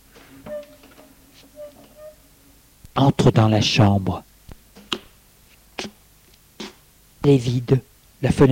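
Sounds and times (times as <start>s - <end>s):
door hinges creaking: 0.2s - 2.4s
speech: 3.0s - 4.3s, 7.2s - 8.5s.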